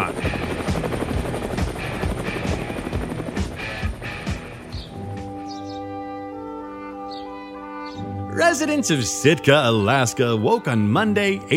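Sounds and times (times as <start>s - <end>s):
helicopter rotor thumping: 0.0s - 5.3s
helicopter engine whine: 0.0s - 8.2s
speech: 8.4s - 11.5s.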